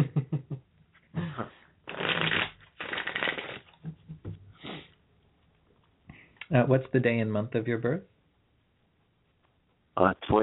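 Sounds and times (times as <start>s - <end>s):
deck of cards being shuffled: 1.9s - 3.8s
speech: 6.5s - 8.1s, 10.0s - 10.4s.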